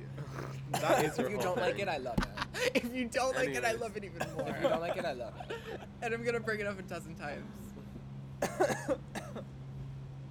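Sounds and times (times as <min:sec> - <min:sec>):
raspy coughs: 0:00.1 - 0:01.8, 0:04.2 - 0:04.8, 0:08.4 - 0:09.5
laughter: 0:00.7 - 0:03.1, 0:04.2 - 0:06.0
speech: 0:00.8 - 0:07.6, 0:08.4 - 0:09.2.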